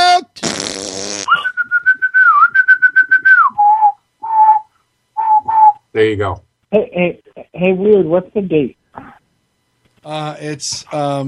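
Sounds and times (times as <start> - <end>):
person whistling a short theme tune as stand-in theme music: 1.3 - 5.8
speech: 6.0 - 8.8, 10.0 - 11.2.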